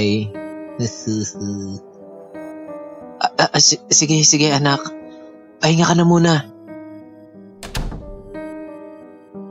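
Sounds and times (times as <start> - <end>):
speech: 0.0 - 1.9, 3.2 - 5.0, 5.6 - 6.5
bedroom door shutting with a solid thunk: 7.6 - 8.4.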